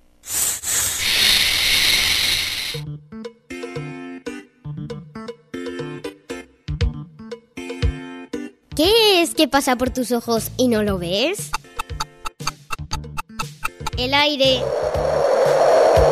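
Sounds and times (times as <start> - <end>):
snake hissing loudly: 0.2 - 2.8, 14.4 - 16.1
speech: 8.8 - 11.6, 14.0 - 15.2.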